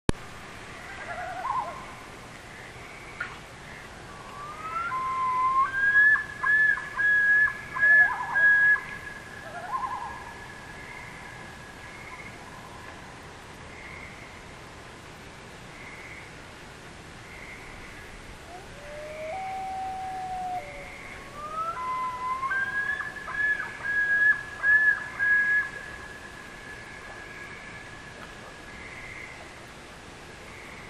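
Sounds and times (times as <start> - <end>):
nature ambience after midnight: 0.1 - 30.8.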